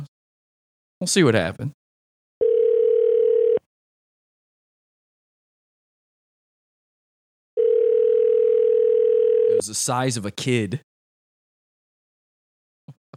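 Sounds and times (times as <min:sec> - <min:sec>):
speech: 0:01.0 - 0:01.8, 0:09.6 - 0:10.9
electronic telephone tone while placing a call: 0:02.4 - 0:03.7, 0:07.6 - 0:09.6.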